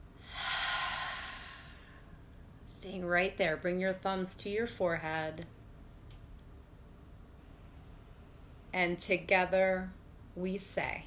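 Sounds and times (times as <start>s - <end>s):
deep breath in and out during a yoga flow: 0.2s - 2.2s
speech: 2.8s - 5.6s, 8.7s - 11.0s.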